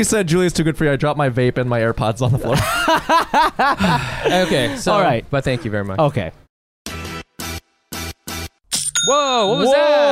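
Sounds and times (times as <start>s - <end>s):
speech: 0.0s - 6.4s, 9.0s - 10.1s
laughter: 2.5s - 5.7s
online store sale notification chime with a bright bell-like ding: 8.8s - 10.1s.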